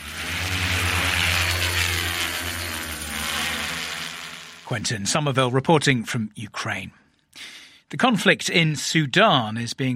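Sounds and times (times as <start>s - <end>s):
drone propellers buzzing on a battlefield in Ukraine: 0.0s - 4.9s
speech: 4.7s - 9.9s.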